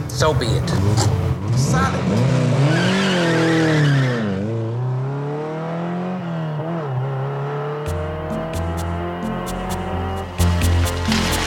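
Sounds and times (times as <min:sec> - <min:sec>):
speech: 0:00.2 - 0:02.9
Ferrari sports car engine revving through gear changes: 0:00.6 - 0:11.4
tire squeal: 0:02.6 - 0:04.5.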